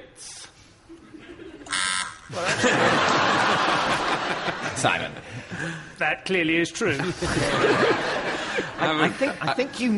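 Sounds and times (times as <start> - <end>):
loud flat electronic quiz buzzer: 1.6 - 2.4
speech: 2.3 - 2.8, 4.8 - 8.2, 8.8 - 9.9
studio audience laughing: 2.3 - 5.4, 7.0 - 9.8.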